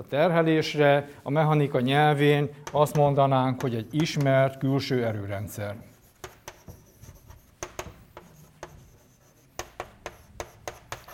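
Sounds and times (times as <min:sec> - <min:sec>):
speech: 0:00.0 - 0:05.9
writing on a board during a mechanics lecture: 0:02.6 - 0:04.4, 0:05.8 - 0:11.1.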